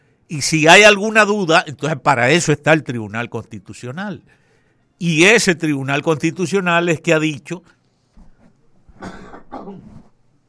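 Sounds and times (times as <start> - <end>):
speech: 0.3 - 4.4, 5.0 - 7.8, 9.0 - 9.9
faint rough coughs: 8.9 - 10.1.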